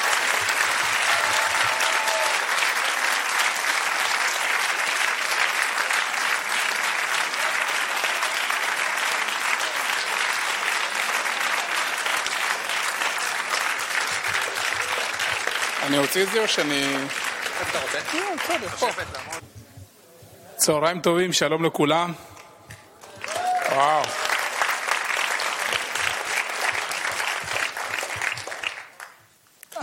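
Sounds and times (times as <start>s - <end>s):
large audience applauding in a packed hall: 0.0s - 19.4s, 22.9s - 29.2s
speech: 15.9s - 19.4s, 20.6s - 22.3s, 23.8s - 24.2s.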